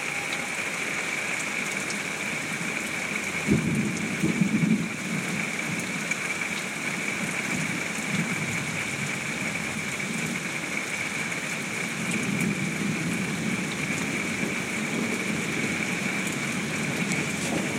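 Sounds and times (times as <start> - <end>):
heavy rain from a summer thunderstorm: 0.0 - 17.7
low thunder rumble: 3.4 - 5.3, 12.3 - 17.7.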